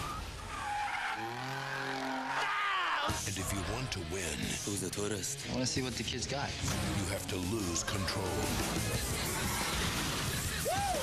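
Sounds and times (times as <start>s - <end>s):
car tires squealing while drifting in Tokyo street racing: 0.0s - 3.5s, 7.8s - 11.0s
speech: 3.4s - 9.6s.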